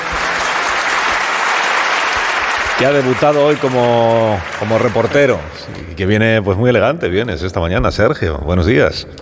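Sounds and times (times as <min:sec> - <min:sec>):
audience applause greeting a guest: 0:00.0 - 0:05.8
speech: 0:02.8 - 0:09.1.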